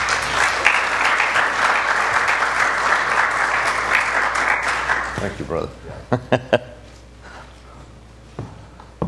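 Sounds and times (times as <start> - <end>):
audience applause: 0.0 - 5.5
speech: 5.5 - 6.7
laughter: 5.9 - 6.9.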